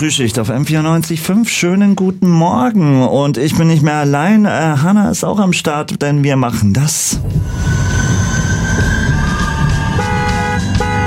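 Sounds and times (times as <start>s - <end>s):
speech: 0.0s - 8.9s
tram rolling past: 7.2s - 11.0s
tram wheels grinding and squealing: 7.4s - 11.0s.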